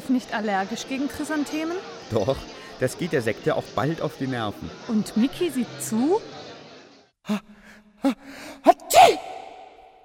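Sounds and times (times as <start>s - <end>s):
speech: 0.1s - 6.5s, 7.2s - 9.2s
person sneezing: 8.7s - 10.0s.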